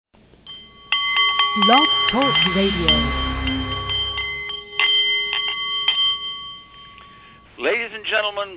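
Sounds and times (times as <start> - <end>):
Nepalese meditation bowl ringing with a sustained metallic hum: 0.4 - 7.6
speech: 1.6 - 3.3, 7.6 - 8.5.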